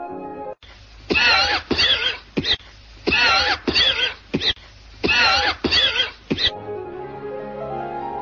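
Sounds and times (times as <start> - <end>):
harsh wet hacking coughs of a chronic smoker: 1.1 - 6.5.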